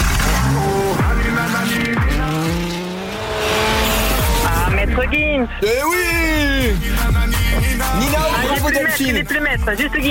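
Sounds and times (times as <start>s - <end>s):
car engine starting and revving: 0.0s - 5.4s
music playing: 0.0s - 10.0s
speech: 5.1s - 10.0s.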